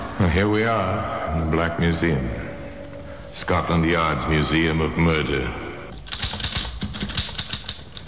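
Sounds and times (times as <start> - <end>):
speech: 0.2 - 2.4, 3.3 - 5.7
typewriter keys typing: 5.9 - 8.0.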